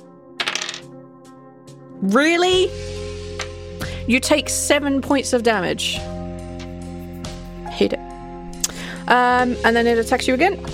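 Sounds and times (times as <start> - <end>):
two dice rattling and tumbling across a tabletop: 0.4 - 0.9
speech: 2.0 - 2.9, 4.1 - 6.2, 7.8 - 8.0, 9.1 - 10.7.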